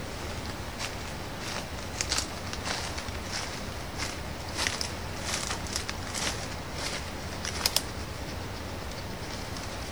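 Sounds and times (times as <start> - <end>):
bipedal footsteps approaching: 0.2 - 9.9.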